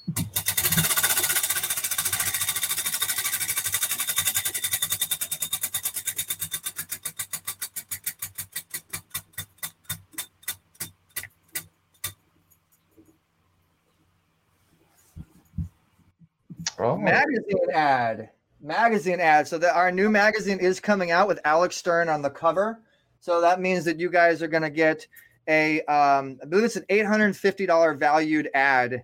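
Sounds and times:
prize wheel spun at a live giveaway ticking: 0.1s - 12.1s
speech: 16.8s - 29.0s.

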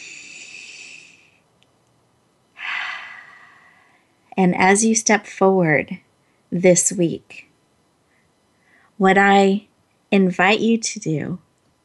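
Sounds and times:
group breathing deeply together during a guided breathing pause: 2.6s - 4.1s
speech: 4.4s - 7.5s, 9.0s - 11.4s.

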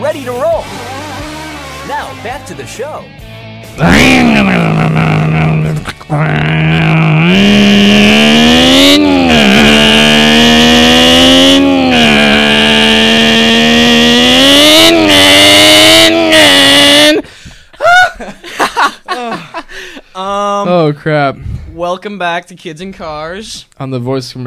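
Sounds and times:
speech: 0.1s - 1.0s, 1.9s - 5.0s, 6.1s - 7.5s, 21.0s - 24.4s
person making a vocal revving engine impression: 3.8s - 17.2s
laughter: 17.8s - 20.0s.

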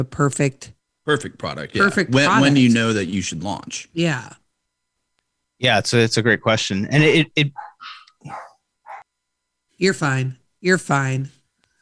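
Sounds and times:
speech: 0.0s - 4.4s, 5.6s - 8.5s, 9.8s - 11.4s
dog barking in an office: 7.5s - 9.1s.

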